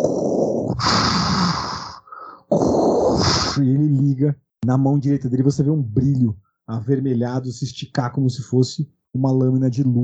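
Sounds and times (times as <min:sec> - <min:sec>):
voice imitating heavy mechanical mask breathing: 0:00.0 - 0:03.6
speech: 0:03.6 - 0:10.0.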